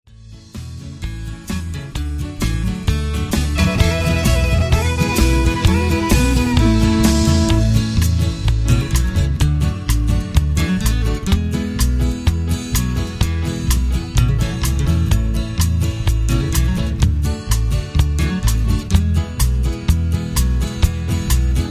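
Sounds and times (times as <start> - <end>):
guitar playing in an instrumental band piece: 0.7 - 21.6
fiddle playing in an instrumental band piece: 3.5 - 8.0.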